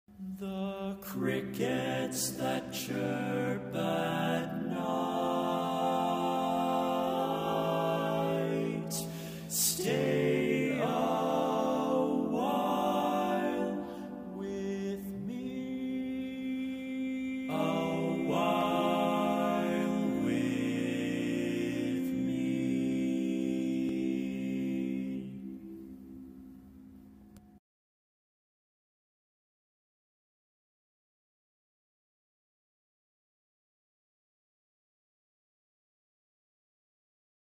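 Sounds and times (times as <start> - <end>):
barbershop tag lead vocal: 0.2 - 25.6.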